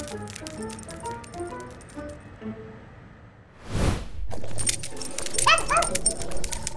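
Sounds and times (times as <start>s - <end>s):
short whooshing rush of noise: 3.5s - 4.6s
dog letting out high whiny yips: 5.2s - 6.7s.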